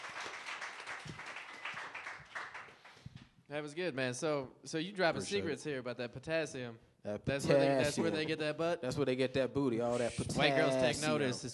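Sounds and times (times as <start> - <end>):
audience applause: 0.0 - 3.0
speech: 3.5 - 11.5.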